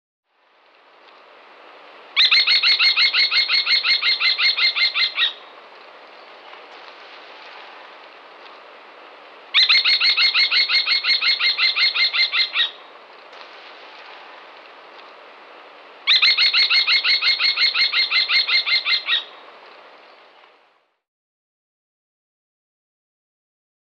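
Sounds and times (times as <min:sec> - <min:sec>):
Falco tinnunculus calling: 0:02.2 - 0:05.5, 0:09.5 - 0:12.9, 0:16.1 - 0:19.4.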